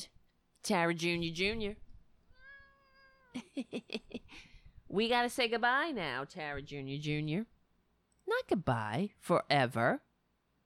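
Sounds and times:
speech: 0.0 - 1.8, 3.4 - 7.5, 8.3 - 10.0
cat meowing: 2.3 - 3.5.

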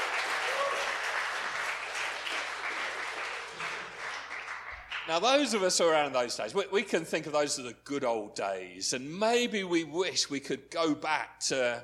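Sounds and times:
church audience applauding: 0.0 - 5.3
speech: 5.1 - 11.8.

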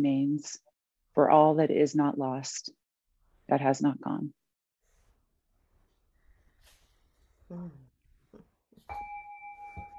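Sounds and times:
speech: 0.0 - 2.8, 3.5 - 4.4, 7.5 - 7.8
brief vocal sounds: 7.5 - 7.9
small bell struck and ringing: 8.9 - 9.9.

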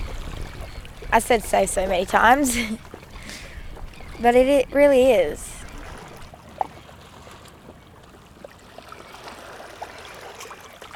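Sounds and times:
water flowing and trickling: 0.0 - 10.9
speech: 1.2 - 3.0, 4.2 - 5.5.

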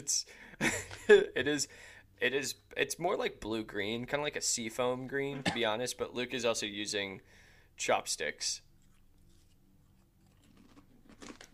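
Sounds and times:
speech: 0.0 - 8.6
crunching chips: 8.8 - 11.5.

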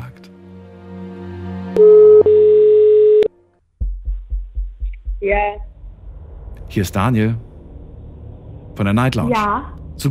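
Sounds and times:
telephone ringback tone on a call to a listener: 1.8 - 3.3
speech: 5.2 - 5.7, 6.7 - 7.5, 8.8 - 10.0.

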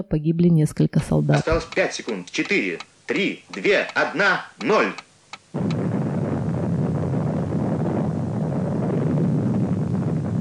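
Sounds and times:
speech: 0.0 - 5.7
deep roaring rumble: 5.6 - 10.3.

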